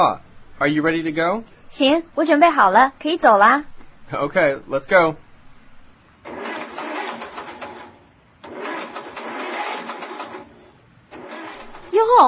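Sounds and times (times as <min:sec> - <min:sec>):
speech: 0:00.0 - 0:05.2, 0:06.2 - 0:06.5, 0:12.0 - 0:12.2
car engine cranking without starting: 0:06.2 - 0:12.2.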